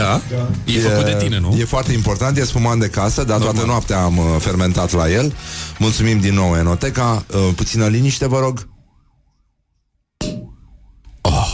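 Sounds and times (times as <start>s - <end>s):
speech: 0.0s - 8.7s
wailing police car siren: 7.0s - 11.2s.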